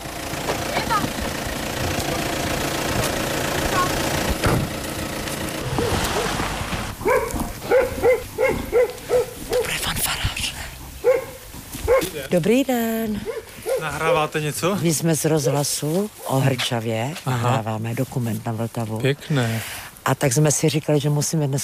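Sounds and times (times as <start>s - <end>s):
German car engine rumbling as it arrives in the village centre of Hrčava: 0.0s - 15.2s
dog barking: 5.8s - 6.4s, 7.0s - 9.8s, 11.0s - 12.2s, 13.2s - 14.0s
speech: 12.3s - 21.6s.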